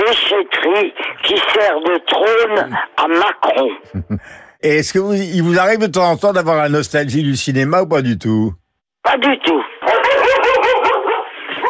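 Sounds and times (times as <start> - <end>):
speech: 0.1 - 9.7
laughter: 3.1 - 4.3, 10.0 - 11.0
dog barking and yipping: 9.8 - 11.6.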